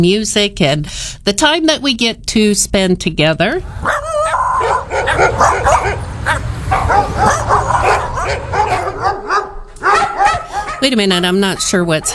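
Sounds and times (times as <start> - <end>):
speech: 0.0 - 3.9, 4.6 - 8.5, 10.8 - 12.1
several dogs barking and yipping: 3.6 - 12.1.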